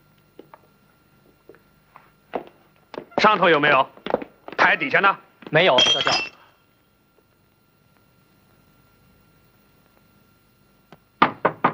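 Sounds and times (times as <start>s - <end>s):
speech: 3.2s - 4.0s, 4.6s - 6.4s
knocking on a door: 11.2s - 11.7s.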